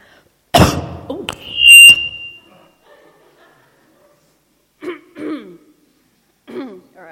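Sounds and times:
person coughing: 0:04.8 - 0:05.7
throat clearing: 0:04.8 - 0:05.8, 0:06.4 - 0:06.9.

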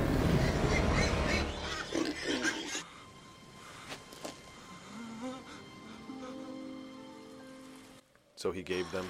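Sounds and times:
herd of pigs grunting and snorting: 0:00.1 - 0:02.9
pigs squealing: 0:00.3 - 0:02.9, 0:08.7 - 0:09.0
speech: 0:08.4 - 0:09.0.

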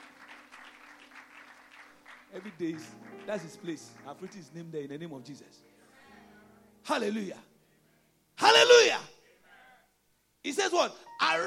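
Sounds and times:
audience clapping: 0:00.0 - 0:04.8
speech: 0:02.3 - 0:05.7, 0:06.9 - 0:07.5, 0:10.7 - 0:11.4.

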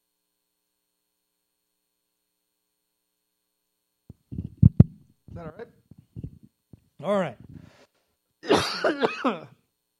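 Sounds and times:
speech: 0:05.4 - 0:05.8, 0:07.0 - 0:07.4, 0:08.5 - 0:09.6
raspy cough: 0:08.4 - 0:09.6.

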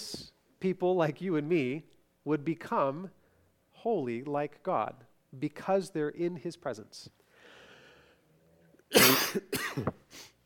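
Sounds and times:
speech: 0:00.6 - 0:03.2, 0:03.8 - 0:07.2, 0:08.9 - 0:10.0
harsh raspy coughs from a tickle in the throat with congestion after an illness: 0:08.9 - 0:10.1.

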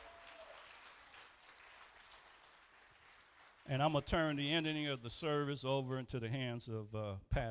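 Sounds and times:
crowd applause: 0:00.0 - 0:05.2
speech: 0:03.7 - 0:07.5.

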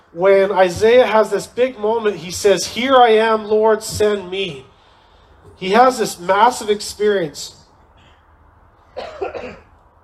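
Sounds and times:
speech: 0:00.1 - 0:04.7, 0:05.6 - 0:07.6
raspy coughs: 0:07.9 - 0:09.8.

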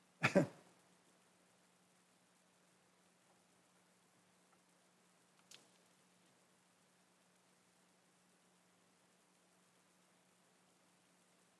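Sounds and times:
faint hum: 0:00.0 - 0:11.5
throat clearing: 0:00.2 - 0:00.6.

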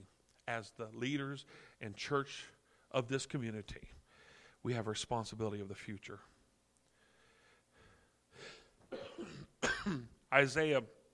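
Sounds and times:
speech: 0:00.5 - 0:04.0, 0:04.6 - 0:06.3, 0:09.9 - 0:11.0
breathy breathing: 0:01.4 - 0:01.8, 0:02.6 - 0:02.9, 0:04.0 - 0:04.6, 0:06.9 - 0:08.8
person coughing throatily: 0:08.8 - 0:10.2.

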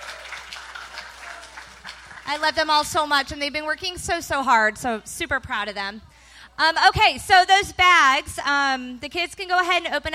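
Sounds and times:
sizable audience applauding in a room: 0:00.0 - 0:02.6
speech: 0:02.3 - 0:10.1.

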